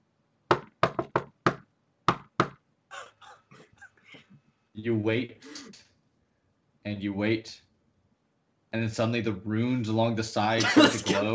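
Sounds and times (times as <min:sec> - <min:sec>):
staff knocking on a stone door: 0:00.5 - 0:02.6
speech: 0:04.8 - 0:05.5, 0:06.8 - 0:07.7, 0:08.7 - 0:11.3
laughter: 0:10.6 - 0:11.3.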